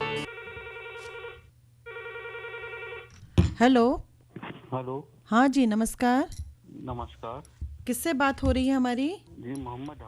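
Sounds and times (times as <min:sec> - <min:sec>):
telephone ringing with electronic trill for incoming call: 0:00.0 - 0:03.2
speech: 0:03.6 - 0:04.1, 0:04.7 - 0:10.0.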